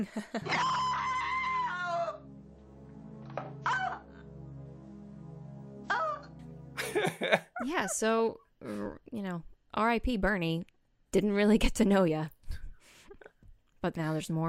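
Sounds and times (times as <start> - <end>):
speech: 0.0 - 1.0, 6.9 - 12.4, 13.8 - 14.4
woman screaming: 0.4 - 2.2, 3.6 - 4.1
low steady droning background: 2.2 - 7.5
laughter: 6.8 - 7.9.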